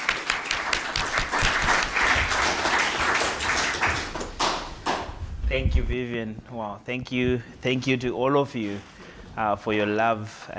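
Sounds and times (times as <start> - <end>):
crowd applauding: 0.0 - 5.1
speech: 5.5 - 10.5.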